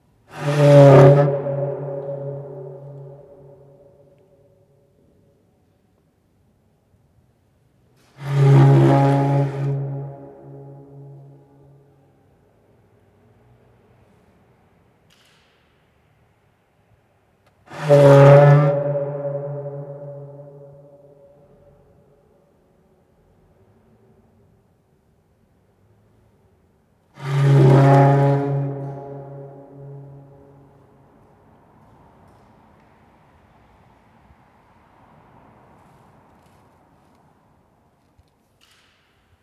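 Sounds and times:
prayer kneeler creaking in a church: 0.3s - 3.8s, 8.2s - 11.4s, 17.7s - 21.0s, 27.2s - 30.5s.

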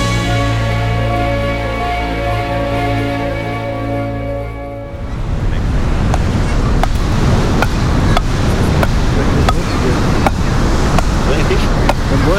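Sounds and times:
wind on an Atlantic beach on the Médoc coast: 0.0s - 12.3s
Atlantic waves washing onto a beach on the Médoc coast: 4.9s - 12.3s.

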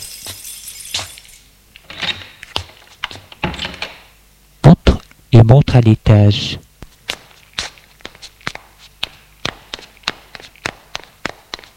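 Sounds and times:
farmhouse door being opened: 1.8s - 2.4s, 3.2s - 4.1s
speech: 5.5s - 6.7s.

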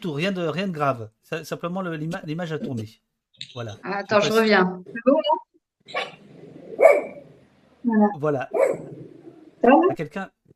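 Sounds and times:
speech: 0.0s - 6.2s, 7.8s - 9.0s, 9.6s - 10.4s
two dogs barking at home: 5.9s - 7.3s, 8.5s - 9.2s.

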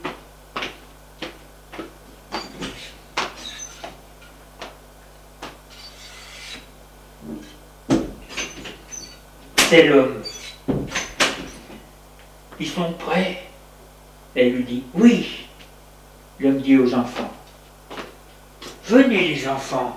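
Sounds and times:
door being opened with clicks, knocks, rattles and scraping: 2.3s - 4.0s, 7.3s - 11.8s
speech: 9.7s - 10.2s, 12.7s - 13.5s, 14.4s - 15.4s, 16.4s - 17.3s, 18.9s - 19.9s.

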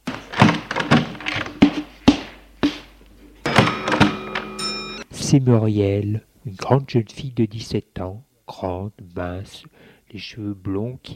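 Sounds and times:
door thud: 0.0s - 2.8s, 3.5s - 4.6s
faint ringing creak-like tone: 3.4s - 5.1s
speech: 5.3s - 11.1s.

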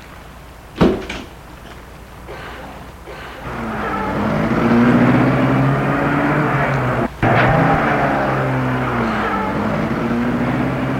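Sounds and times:
company car engine running as the car pulls away: 3.4s - 10.9s.

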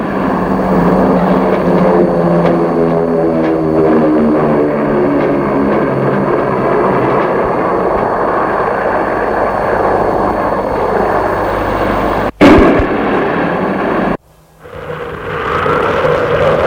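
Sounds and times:
propeller airplane engine droning: 0.0s - 16.6s.

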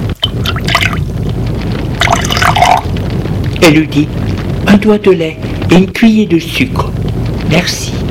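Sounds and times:
boiling-hot chocolate being poured: 0.2s - 1.1s, 2.0s - 2.9s
liquid splashing: 0.2s - 1.1s, 2.0s - 2.9s
speech: 3.6s - 8.0s.

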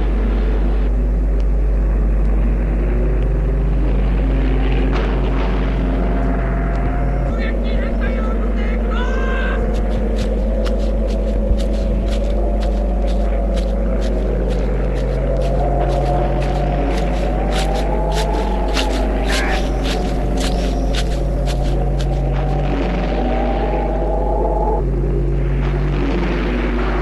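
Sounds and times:
airplane engine drone passing overhead: 0.0s - 27.0s
sharp crackling clicks: 9.6s - 23.3s.

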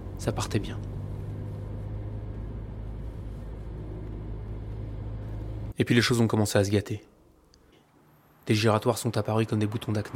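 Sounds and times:
diesel car engine droning on a country road: 0.0s - 5.8s
road noise: 0.0s - 10.1s
speech: 0.2s - 0.9s, 5.8s - 7.1s, 8.5s - 10.1s.

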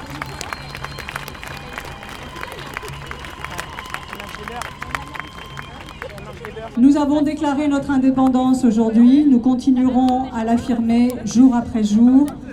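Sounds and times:
large crowd applauding outdoors: 0.0s - 6.8s
speech: 6.8s - 12.4s.

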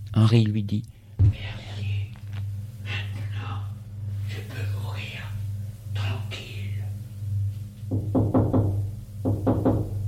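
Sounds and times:
steady low hum: 0.0s - 10.0s
speech: 0.2s - 1.6s
knocking on a door: 7.9s - 10.0s.

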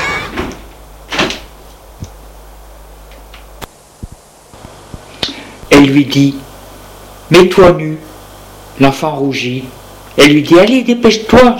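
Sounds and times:
door closing: 0.0s - 1.5s
speech: 5.8s - 6.4s, 7.3s - 8.1s, 8.8s - 11.5s.

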